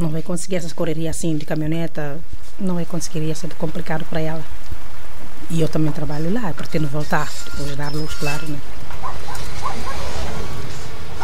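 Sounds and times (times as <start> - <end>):
speech: 0.0 - 4.8, 5.4 - 9.9
steady loud outdoor noise and rumble: 5.7 - 11.2
several dogs barking in a neighbourhood: 8.9 - 10.6.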